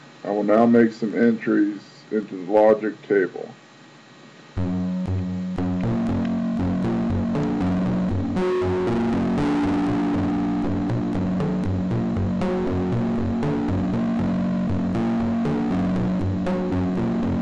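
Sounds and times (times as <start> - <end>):
speech: 0.2 - 3.6
droning low hum: 4.1 - 17.3
heavily distorted Karplus-Strong synthesized guitar notes plucked: 4.6 - 17.3.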